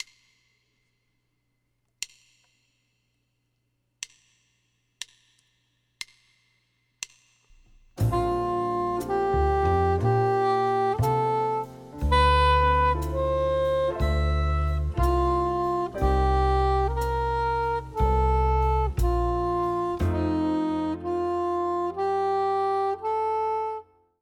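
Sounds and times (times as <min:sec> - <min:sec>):
B-flat soprano instrument: 0:08.0 - 0:24.0.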